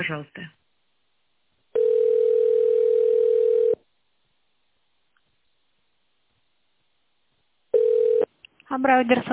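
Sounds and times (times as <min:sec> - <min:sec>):
speech: 0:00.0 - 0:00.6, 0:08.8 - 0:09.3
telephone ringback tone while call connects: 0:01.8 - 0:03.8, 0:07.7 - 0:08.3.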